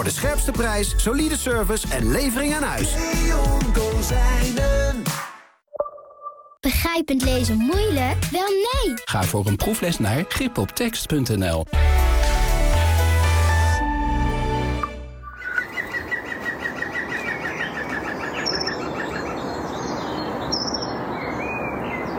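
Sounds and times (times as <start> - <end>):
speech: 0.0 - 5.3, 6.8 - 12.0
music: 0.0 - 5.4, 7.2 - 15.3
bird calls: 15.2 - 22.1
green woodpecker giving its laughing call outdoors about 20 meters from a house: 15.4 - 19.7.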